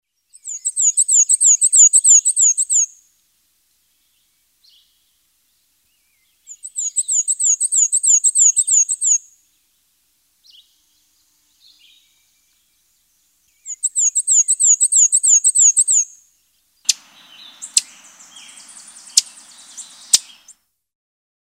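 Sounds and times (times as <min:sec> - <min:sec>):
Black and White Warbler bird songs: 0:00.3 - 0:02.9, 0:06.1 - 0:09.2, 0:11.5 - 0:20.6.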